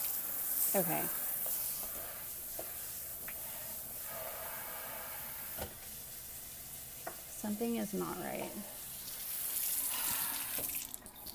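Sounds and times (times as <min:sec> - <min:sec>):
water spraying: 0:00.0 - 0:11.3
speech: 0:00.7 - 0:01.2, 0:07.4 - 0:08.8.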